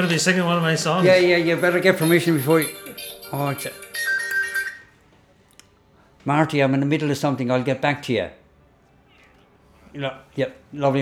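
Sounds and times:
speech: 0.0s - 3.8s, 6.2s - 8.4s, 10.0s - 11.0s
mobile phone ringtone electronic melody: 1.0s - 5.0s.

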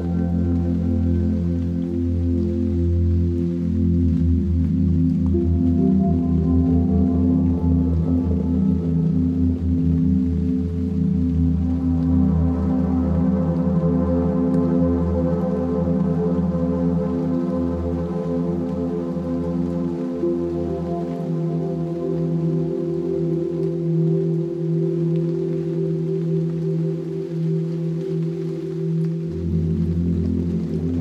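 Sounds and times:
ambient music with deep drone: 0.0s - 31.0s.

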